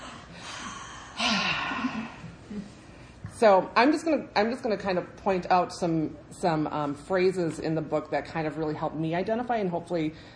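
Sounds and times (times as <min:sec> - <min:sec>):
deep nervous breath: 0:00.0 - 0:03.2
speech: 0:03.4 - 0:10.3.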